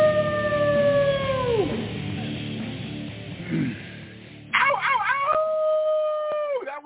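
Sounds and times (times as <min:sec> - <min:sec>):
person howling: 0:00.0 - 0:01.9, 0:04.6 - 0:06.7.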